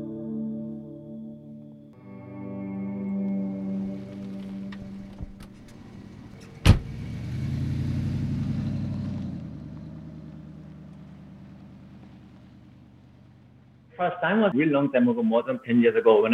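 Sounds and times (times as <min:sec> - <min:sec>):
car carrying a hitchhiker engine hum: 0:03.1 - 0:14.0
car tire rumble on the road: 0:03.2 - 0:16.3
sharp thump: 0:06.6 - 0:07.0
speech: 0:14.0 - 0:16.3.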